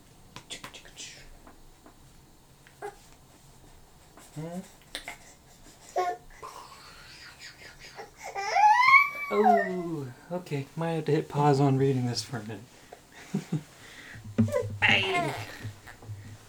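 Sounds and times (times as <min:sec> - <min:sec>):
baby fussing and babbling: 0:04.2 - 0:10.1, 0:14.3 - 0:16.4
speech: 0:04.4 - 0:04.8, 0:10.4 - 0:12.7, 0:13.3 - 0:13.7.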